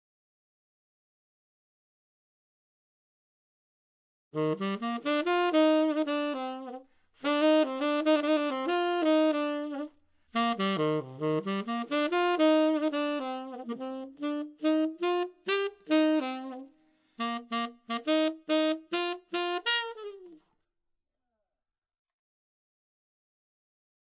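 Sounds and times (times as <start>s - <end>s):
jazz saxophone: 4.4s - 20.5s.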